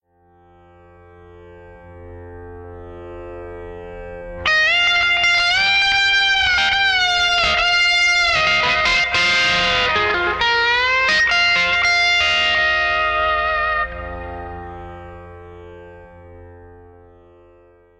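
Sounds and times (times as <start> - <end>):
pedal steel guitar: 1.4 - 17.9
drone: 3.9 - 17.5.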